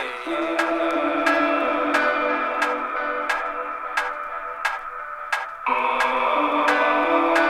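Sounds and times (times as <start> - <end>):
sustained droning musical backdrop: 0.0 - 7.4
clock ticking: 0.3 - 7.4.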